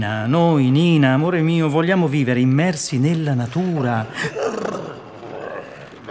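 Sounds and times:
speech: 0.0s - 4.8s
heavy loud breathing groan: 4.1s - 6.0s.

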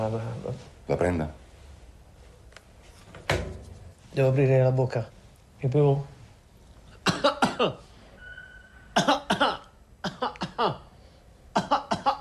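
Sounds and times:
speech: 0.0s - 1.4s, 4.2s - 6.1s, 7.6s - 7.8s
patient coughing at a doctor's examination: 7.0s - 7.8s, 9.0s - 10.9s, 11.5s - 12.1s
faint whistling tone: 8.1s - 8.9s.

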